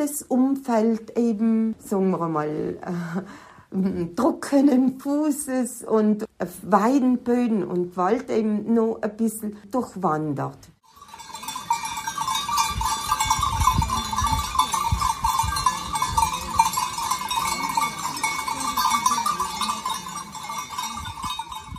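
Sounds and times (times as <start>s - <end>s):
speech: 0.0s - 10.7s
sheep bells clanking and tinkling: 10.8s - 21.7s.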